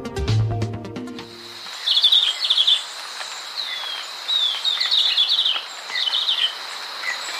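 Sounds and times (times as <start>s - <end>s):
steady insect drone: 1.2s - 7.3s
rufous-naped greenlet singing trilling phrases: 1.7s - 7.3s.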